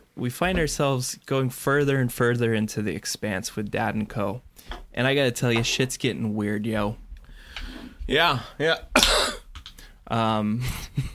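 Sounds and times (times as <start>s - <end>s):
speech: 0.2s - 7.0s, 8.1s - 9.2s, 10.1s - 11.1s
person coughing: 9.0s - 9.5s.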